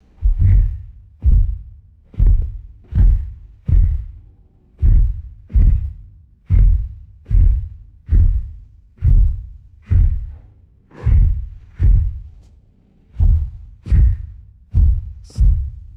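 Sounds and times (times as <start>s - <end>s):
slow heavy low pitched footsteps: 0.0s - 15.9s.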